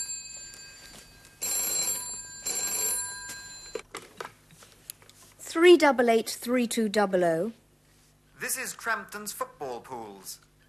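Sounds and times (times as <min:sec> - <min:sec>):
telephone bell ringing: 0:00.0 - 0:03.8
speech: 0:05.6 - 0:07.6, 0:08.4 - 0:10.5.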